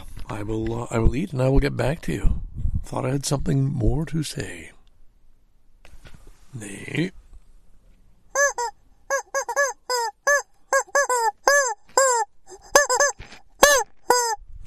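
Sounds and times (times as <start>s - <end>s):
speech: 0.3s - 4.7s, 6.5s - 7.2s
chicken squawking in loud bursts: 8.3s - 14.4s.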